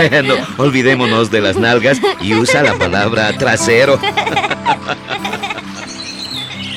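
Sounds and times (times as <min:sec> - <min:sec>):
speech: 0:00.0 - 0:05.0
laughter: 0:00.0 - 0:06.0
flock of small birds chirping in treetops: 0:05.2 - 0:06.7.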